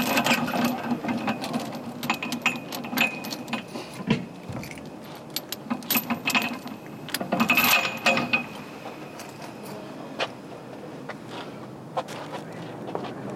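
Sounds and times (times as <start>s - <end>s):
bike lock being fastened: 0.0s - 9.5s.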